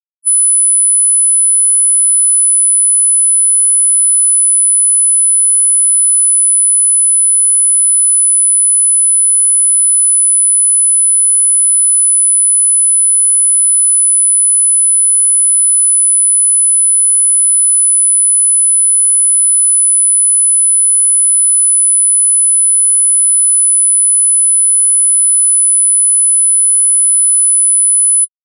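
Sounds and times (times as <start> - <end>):
9999 Hz sine wave tone at 0 dB in left channel: 0.3 - 28.3.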